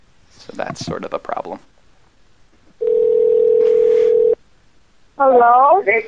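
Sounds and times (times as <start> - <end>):
speech: 0.5 - 1.7, 5.2 - 6.0
electronic phone ringing tone of an outgoing call: 2.8 - 4.4.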